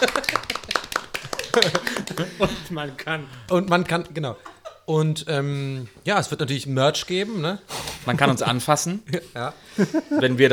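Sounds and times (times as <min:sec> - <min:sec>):
quick uneven hand clapping: 0:00.0 - 0:02.7
laughter: 0:00.0 - 0:03.4, 0:04.0 - 0:04.9, 0:07.8 - 0:10.5
speech: 0:01.6 - 0:10.5.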